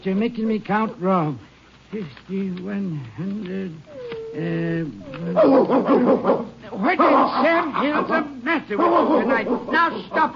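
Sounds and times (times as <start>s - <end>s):
speech: 0.0s - 10.3s
nervous dog growling and whining: 3.8s - 6.6s
nervous dog barking sharply: 5.3s - 10.2s.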